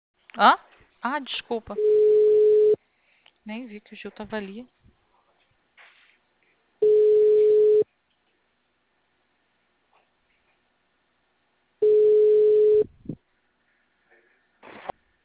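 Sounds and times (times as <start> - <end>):
speech: 0.4 - 2.4, 3.4 - 4.8
telephone ringback tone while a call is being placed: 1.8 - 2.8, 6.8 - 7.8, 11.8 - 12.9.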